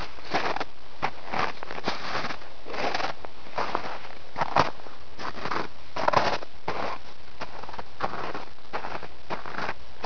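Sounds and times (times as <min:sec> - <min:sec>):
footsteps in snow: 0:00.0 - 0:10.0.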